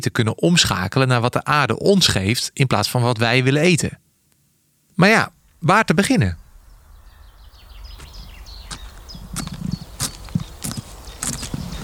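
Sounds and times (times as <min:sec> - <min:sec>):
speech: 0:00.0 - 0:04.0, 0:05.0 - 0:06.4
footsteps of someone in boots crunching on a country path in farmland: 0:07.1 - 0:11.8.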